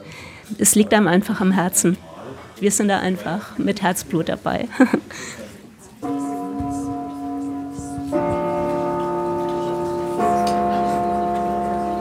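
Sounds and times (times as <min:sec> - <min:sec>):
speech: 0:00.6 - 0:05.4
old three-key cinema gong ringing clear tones: 0:06.0 - 0:11.9.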